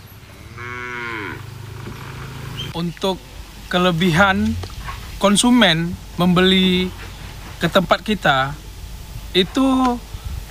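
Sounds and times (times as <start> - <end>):
steady low hum: 0.0 - 10.4
cow mooing at a stall selling sacrificial cattle: 0.2 - 2.8
speech: 2.8 - 7.0, 7.6 - 8.6, 9.3 - 10.1.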